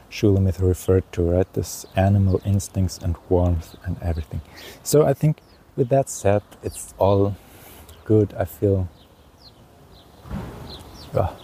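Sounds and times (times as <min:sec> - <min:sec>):
speech: 0:00.2 - 0:07.4, 0:08.1 - 0:09.0, 0:11.1 - 0:11.4
faint high bird chirps in a wood: 0:03.6 - 0:11.4.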